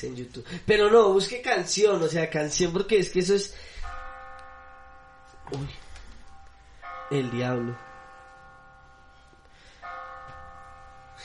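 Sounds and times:
speech: 0.0 - 3.8, 5.5 - 5.8, 7.1 - 7.9
phone app notification bell chime: 3.8 - 11.2.

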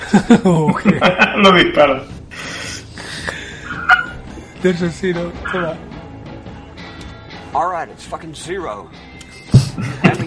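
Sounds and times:
laughter: 0.0 - 2.0, 3.0 - 4.2, 9.5 - 10.2
speech: 0.1 - 2.2, 4.6 - 5.9, 7.5 - 9.0, 9.8 - 10.2
dog barking and yipping: 3.8 - 4.2.

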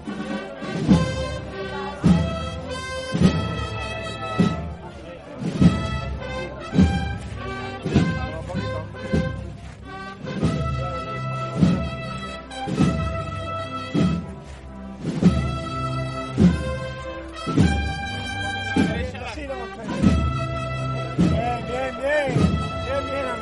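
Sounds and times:
procession band playing a slow brass march in Jerez: 0.0 - 23.4
steady heavy procession drum beat: 0.1 - 23.4.

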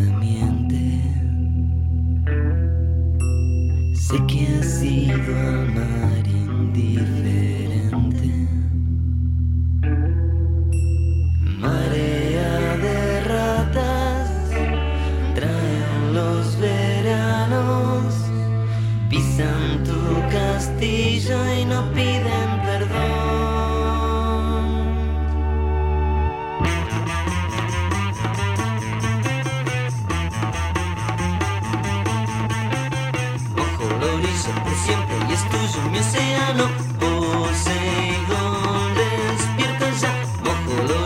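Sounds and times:
effected guitars in a rock song: 0.0 - 41.0
heavy bass line in a rock song: 0.0 - 41.0
percussion like small Christmas bells: 3.2 - 4.4, 10.7 - 12.4, 27.4 - 41.0
driving drums in a rock song: 26.7 - 41.0.

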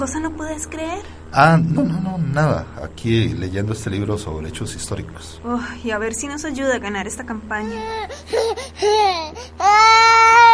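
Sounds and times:
speech: 0.0 - 10.5
baby crying aboard an old airplane: 7.6 - 10.5.

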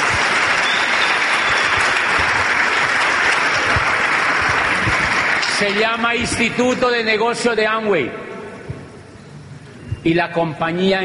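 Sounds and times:
large audience applauding: 0.0 - 6.5
speech: 5.6 - 8.3, 10.0 - 11.0.

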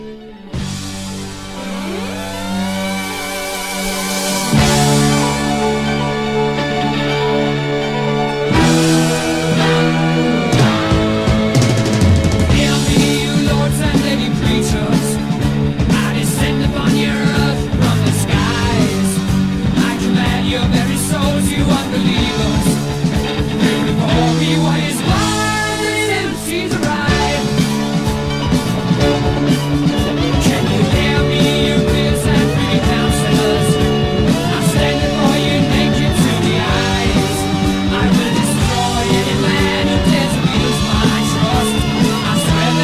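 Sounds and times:
distorted guitars: 0.0 - 42.8
layered vocals: 0.0 - 42.8
loud driving 1974 rock song: 0.0 - 42.8
quick piano run: 0.0 - 42.8
pounding drums: 2.9 - 6.0, 8.5 - 42.8.

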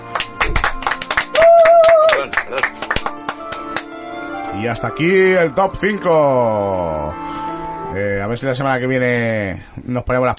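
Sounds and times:
people clapping: 0.0 - 4.0
vocal cheer or hum: 1.3 - 2.3
speech: 4.6 - 10.3.

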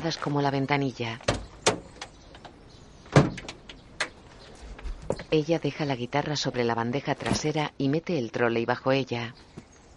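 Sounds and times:
speech: 0.0 - 1.4, 5.3 - 9.5
van doors being shut: 1.2 - 4.2.

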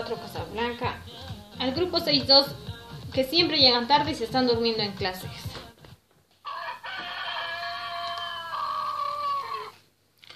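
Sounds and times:
speech: 0.1 - 5.5
rooster crowing: 6.4 - 9.8.

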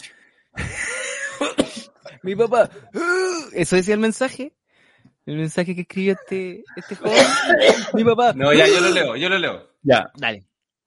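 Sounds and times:
harsh rasping cough with hacking bursts: 0.6 - 2.2, 6.1 - 9.2
laughter: 0.6 - 2.9, 6.2 - 9.0
speech: 1.4 - 4.6, 5.3 - 10.5.

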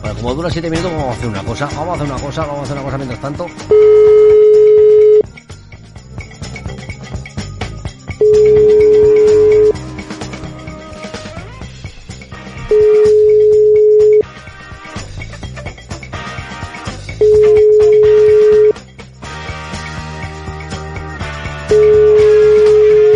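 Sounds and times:
speech: 0.1 - 4.2
messaging app call ringing tone: 3.7 - 5.3, 8.2 - 9.8, 12.7 - 14.3, 17.2 - 18.8, 21.7 - 23.1.

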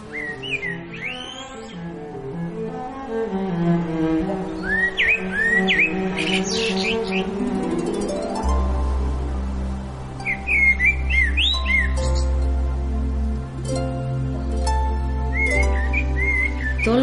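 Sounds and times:
birds chirping and whistling calls in a garden: 0.0 - 2.6, 4.3 - 17.0
instrumental music bed with deep bass: 0.0 - 17.0.

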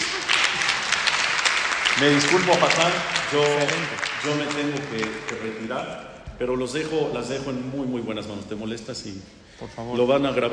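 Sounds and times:
audience applause: 0.0 - 5.6
speech: 2.0 - 10.5.

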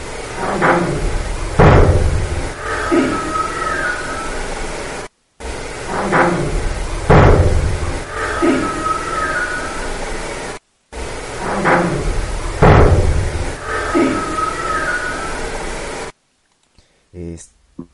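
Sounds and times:
static hiss of a psychophony recording: 0.0 - 17.9
door slamming shut: 0.4 - 4.1, 5.8 - 9.6, 11.4 - 14.6.

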